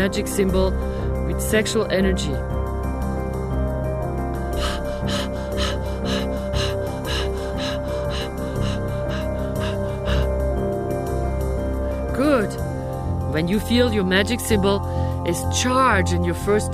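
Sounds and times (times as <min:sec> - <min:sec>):
speech: 0:00.0 - 0:02.6, 0:13.4 - 0:16.7
sustained droning musical background: 0:00.0 - 0:16.7
strong deep breathing: 0:04.4 - 0:12.0.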